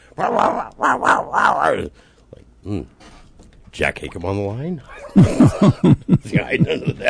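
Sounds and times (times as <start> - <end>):
dog growling and barking: 0.2 - 1.9
speech: 0.2 - 3.1, 3.8 - 7.0
laughter: 4.8 - 7.0.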